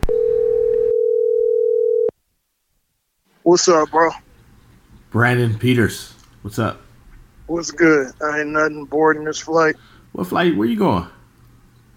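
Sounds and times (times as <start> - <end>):
phone line tone: 0.0 - 2.1
faint noise: 0.0 - 11.9
speech: 3.5 - 4.2, 5.1 - 6.8, 7.5 - 11.2.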